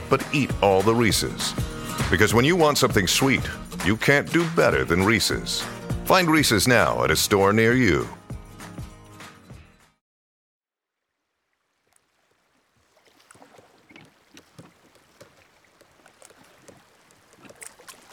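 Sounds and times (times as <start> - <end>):
river water lapping against a hull: 0.0 - 5.4, 10.9 - 18.1
music: 0.0 - 10.0
speech: 0.1 - 8.2
moored boat creaking and knocking while rocking: 11.9 - 18.1.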